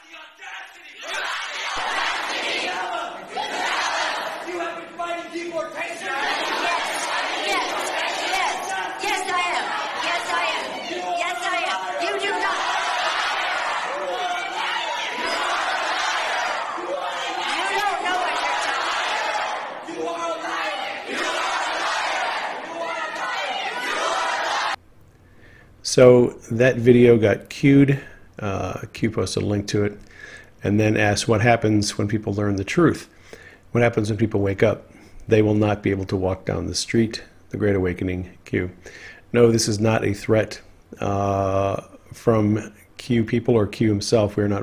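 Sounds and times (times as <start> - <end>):
angry crowd at an event in San Francisco shouting down a politician: 0.0 - 24.8
speech: 0.2 - 2.0, 26.0 - 44.6.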